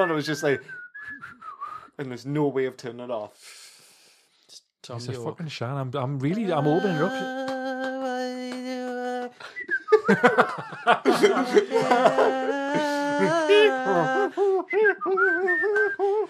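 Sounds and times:
speech: 0.0 - 1.4, 2.0 - 3.6, 4.5 - 7.4, 10.1 - 12.5, 13.2 - 16.0
person whistling a wavering melodic tune: 0.0 - 1.9, 9.4 - 10.4, 13.3 - 16.2
snickering laughter: 9.9 - 16.2.

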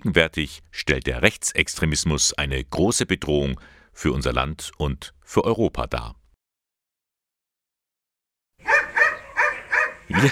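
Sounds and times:
speech: 0.0 - 6.2, 10.1 - 10.3
dog barking at a senior center in Ingolstadt: 8.6 - 10.3
laughter: 10.1 - 10.3.

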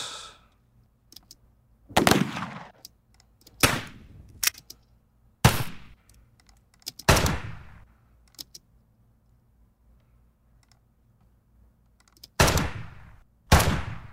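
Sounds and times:
low steady hum: 0.0 - 14.1
recorded rifle shots: 1.9 - 2.8, 3.6 - 4.1, 5.4 - 6.0, 7.1 - 7.8, 12.4 - 14.1.

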